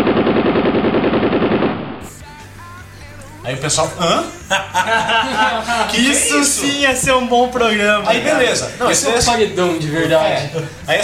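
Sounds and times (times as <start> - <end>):
loud rapid burst of gunfire: 0.0 - 2.0
speech: 3.5 - 11.0
laughter: 3.8 - 11.0.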